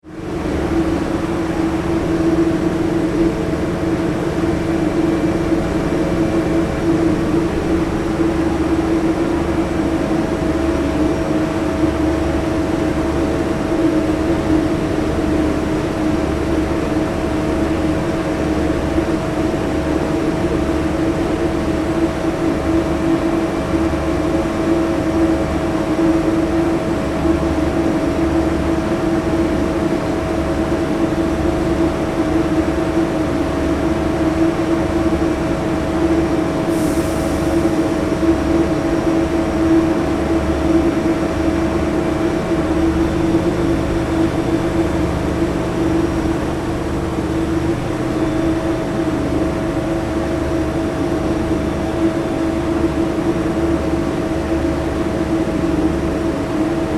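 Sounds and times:
large car ferry engine room machinery: 0.0s - 56.9s.

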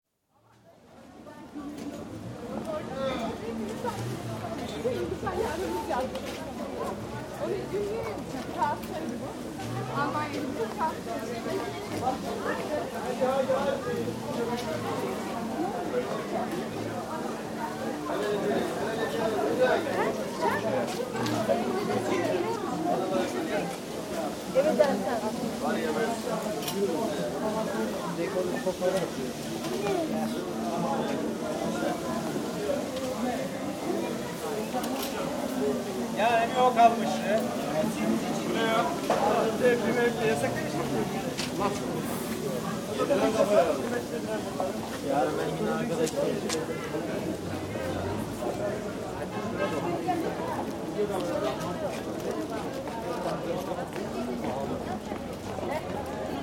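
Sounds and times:
fish merchants at Kadikoy market in Istanbul: 0.2s - 56.4s
vegetable and meat sellers at Kadikoy market in Istanbul: 0.2s - 56.4s
restaurant callers at Kadikoy market in Istanbul: 9.9s - 50.3s.

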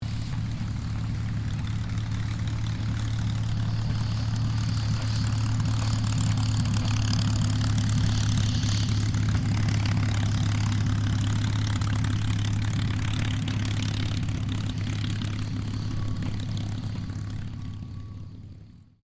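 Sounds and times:
CAC-18 Mustang aircraft taxiing: 0.0s - 19.0s.

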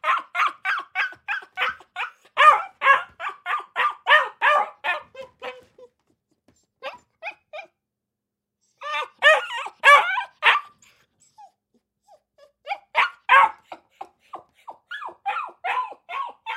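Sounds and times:
Akita puppy barking in a cage kennel: 0.0s - 5.9s, 8.8s - 10.8s, 12.4s - 16.5s.

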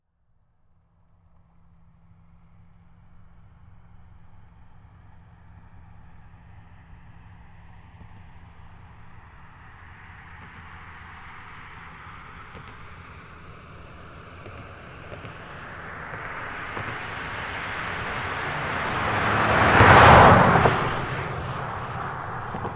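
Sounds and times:
2005 Toyota Highlander V6 driving by fast: 4.5s - 22.7s.

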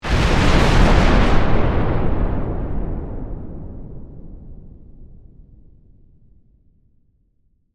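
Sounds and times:
massive bomb explosion: 0.0s - 5.7s.

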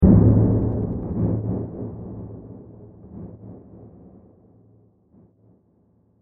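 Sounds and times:
diffuse impact with delays: 0.0s - 3.6s.

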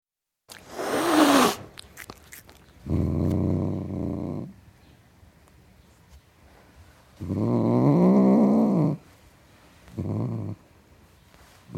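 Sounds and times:
domestic tom cat growling: 0.6s - 4.6s, 7.2s - 9.0s.

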